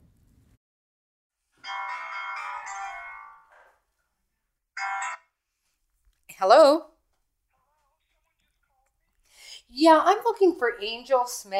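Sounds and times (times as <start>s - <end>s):
phone ringing on an outgoing call: 1.6s - 3.7s, 4.8s - 5.4s
speech: 6.4s - 6.9s, 9.8s - 11.5s.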